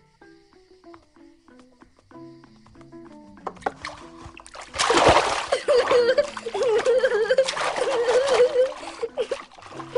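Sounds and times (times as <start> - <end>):
water splashing as a child washes himself: 3.6 - 9.9.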